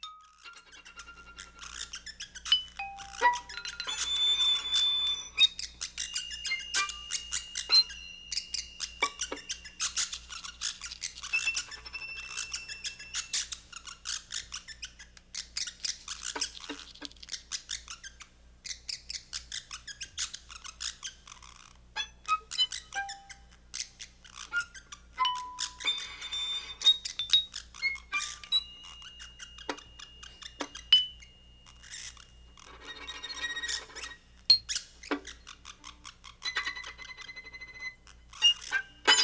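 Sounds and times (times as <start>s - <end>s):
squeaky bird-like violin tones and high sustained notes in experimental music: 0.0s - 17.0s, 19.3s - 39.2s.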